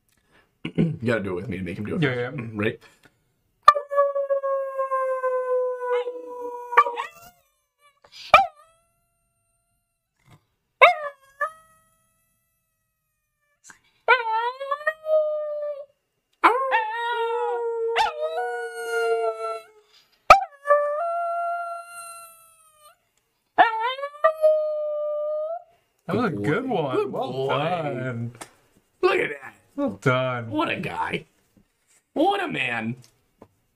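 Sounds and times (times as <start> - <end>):
speech: 0.8 - 3.0, 30.0 - 31.3, 32.2 - 33.1
dog howling: 3.7 - 23.0, 23.6 - 28.3.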